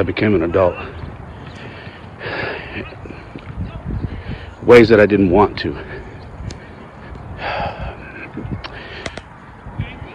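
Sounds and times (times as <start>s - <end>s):
speech: 0.0s - 1.0s, 4.7s - 6.0s
heavy labored breathing while rucking in weighted vest: 0.7s - 4.6s, 5.6s - 9.4s.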